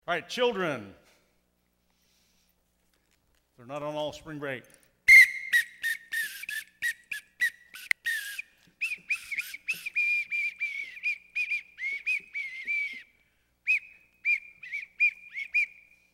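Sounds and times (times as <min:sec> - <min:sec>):
speech: 0:00.1 - 0:01.0, 0:03.6 - 0:04.8
shrill bird-like whistling: 0:05.1 - 0:16.1.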